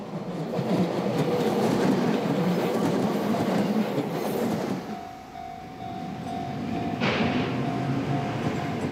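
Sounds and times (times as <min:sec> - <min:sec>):
train rumbling past on tracks through a residential area: 0:00.0 - 0:08.9.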